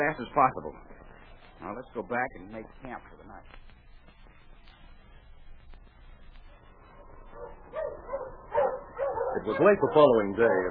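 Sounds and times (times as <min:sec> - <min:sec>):
speech: 0:00.0 - 0:01.0, 0:01.6 - 0:03.6, 0:09.4 - 0:10.6
sled dogs yipping and barking: 0:07.0 - 0:10.6.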